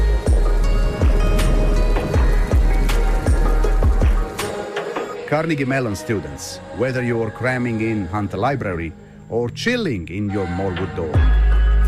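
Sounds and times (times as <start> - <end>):
soft rain: 0.0 - 5.2
speech: 5.3 - 11.8.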